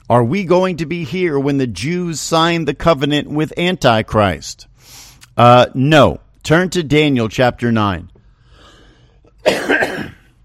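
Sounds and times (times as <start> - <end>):
speech: 0.1 - 8.1, 9.4 - 10.1
person coughing with a throat-clearing rasp: 9.3 - 10.4.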